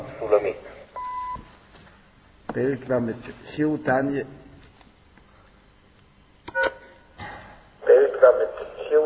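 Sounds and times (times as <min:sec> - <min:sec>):
speech: 0:00.2 - 0:00.8, 0:02.6 - 0:04.4
short electronic beeps from an answering system: 0:01.0 - 0:01.4, 0:06.5 - 0:06.8.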